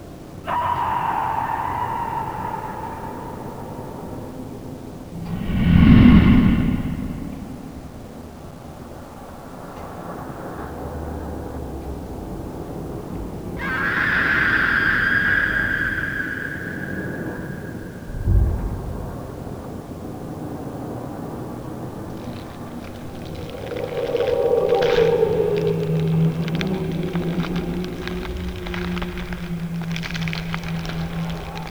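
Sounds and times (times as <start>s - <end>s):
horror soundscape: 0.5s - 4.3s, 5.2s - 8.1s, 13.6s - 18.6s, 21.7s - 31.6s.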